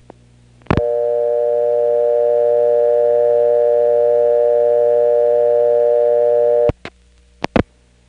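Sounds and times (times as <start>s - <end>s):
payphone dial tone: 0.8s - 6.7s.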